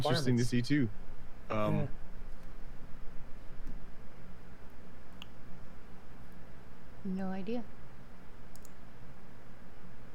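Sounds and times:
speech: 0.0s - 2.0s, 7.0s - 7.8s
low hiss: 0.0s - 10.1s
computer keyboard clicks from a pet lying on the keyboard: 8.5s - 8.8s.

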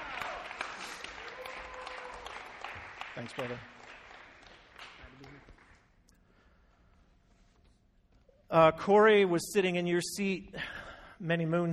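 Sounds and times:
audience applause: 0.0s - 5.9s
speech: 3.2s - 3.8s, 8.5s - 11.7s.

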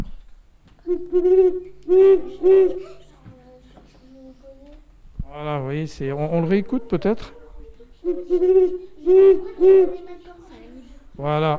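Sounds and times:
owl hooting: 0.8s - 3.1s, 6.2s - 10.3s
speech: 0.9s - 3.0s, 5.3s - 7.4s, 8.0s - 10.4s, 11.2s - 11.5s.

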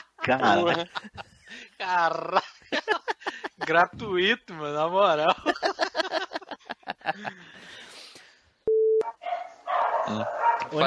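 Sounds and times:
laughter: 0.0s - 4.1s, 5.2s - 7.8s
speech: 0.2s - 3.0s, 3.6s - 5.8s, 7.1s - 7.9s, 10.1s - 10.8s
dog barking excitedly in sharp yaps: 9.0s - 10.8s.

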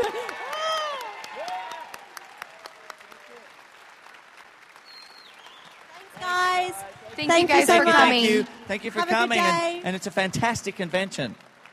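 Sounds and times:
audience whoops and shouts: 0.0s - 3.4s
large indoor convention audience clapping and cheering: 0.0s - 11.7s
speech: 7.2s - 11.5s.

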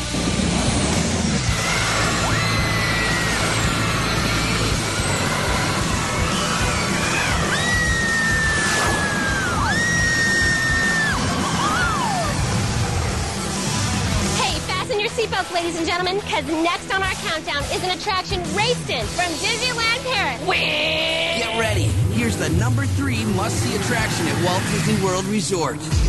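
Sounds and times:
launched roller coaster at a theme park: 0.1s - 14.7s, 20.7s - 25.9s
roller coaster riders screaming: 1.5s - 12.8s
speech: 15.6s - 26.0s.

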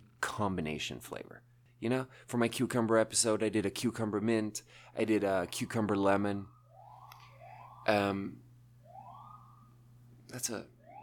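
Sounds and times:
speech: 0.2s - 6.6s, 7.8s - 8.4s, 10.3s - 10.7s
emergency vehicle siren outside: 5.7s - 11.0s.

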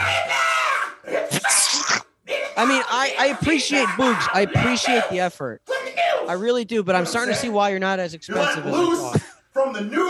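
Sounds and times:
harsh noisy vocal shrieks: 0.0s - 6.3s
man screaming while performing in a concert: 0.0s - 6.3s
speech: 2.6s - 10.0s.

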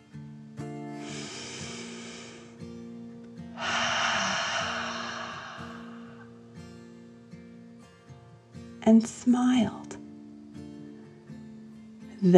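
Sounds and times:
deep calming breaths during a breathing exercise: 1.0s - 2.8s, 3.5s - 6.4s
speech: 8.9s - 9.8s, 12.2s - 12.3s.

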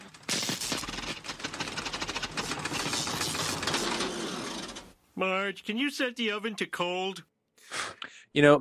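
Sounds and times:
overloaded refrigerator motor straining with clattering rattle: 0.0s - 5.0s
speech: 5.2s - 7.3s, 8.4s - 8.6s.

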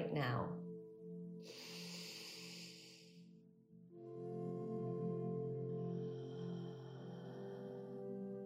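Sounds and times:
soft sustained musical drone: 0.0s - 8.4s
slow deep breathing during a guided loving-kindness meditation: 1.4s - 3.4s, 5.5s - 8.4s.

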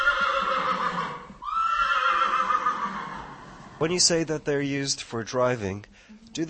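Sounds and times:
young horse whinnying in a stable: 0.0s - 3.8s
speech: 3.8s - 6.4s.

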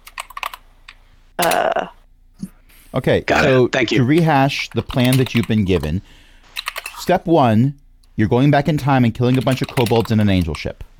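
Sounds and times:
typing on a computer keyboard entering a password: 0.0s - 0.6s, 4.2s - 5.9s, 6.6s - 7.0s, 9.2s - 10.7s
speech: 3.0s - 6.2s, 7.0s - 10.9s.

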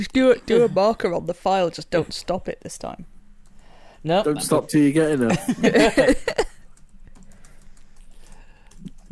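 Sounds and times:
speech: 0.0s - 3.2s, 4.0s - 6.5s
laughter: 5.3s - 6.6s
typing on a computer keyboard: 6.6s - 9.0s.

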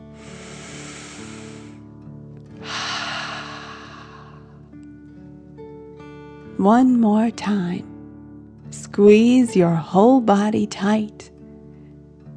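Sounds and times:
slow deep breath in through the nose and out through the mouth: 0.0s - 4.8s
speech: 6.6s - 7.9s, 9.0s - 11.2s.

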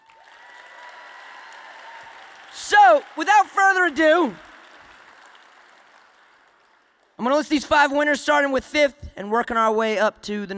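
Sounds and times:
audience applause at an event celebrating school performers: 0.0s - 7.1s
speech: 2.6s - 4.5s, 7.2s - 10.5s.

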